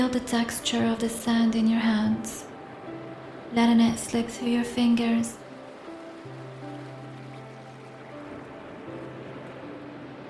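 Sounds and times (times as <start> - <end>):
speech: 0.0 - 2.5, 3.5 - 5.4
gentle ocean waves breaking on shore: 0.0 - 10.2.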